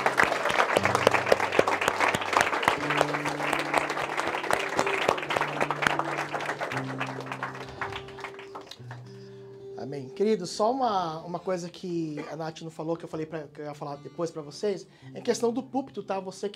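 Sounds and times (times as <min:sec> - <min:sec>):
sustained low organ or keyboard tones: 0:00.0 - 0:08.8
audience applauding: 0:00.0 - 0:09.3
speech: 0:10.2 - 0:16.5.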